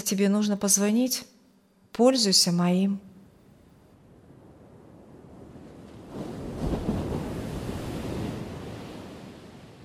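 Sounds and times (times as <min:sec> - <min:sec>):
speech: 0:00.1 - 0:01.4, 0:02.0 - 0:03.1
ocean waves crashing onto sand: 0:05.3 - 0:09.8.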